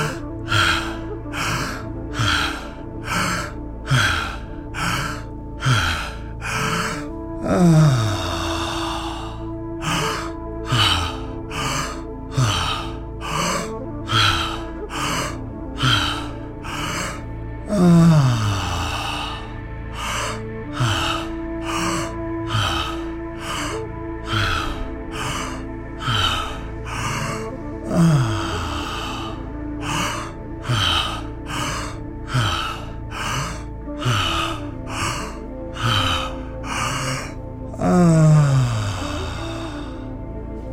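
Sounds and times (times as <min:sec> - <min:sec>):
fast forceful open-mouth breaths in and out: 0:00.0 - 0:40.7
low sustained musical drone: 0:00.0 - 0:40.7.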